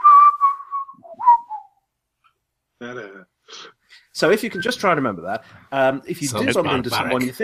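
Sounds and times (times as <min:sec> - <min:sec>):
person whistling a short signal phrase: 0:00.0 - 0:01.8
speech: 0:02.8 - 0:07.4.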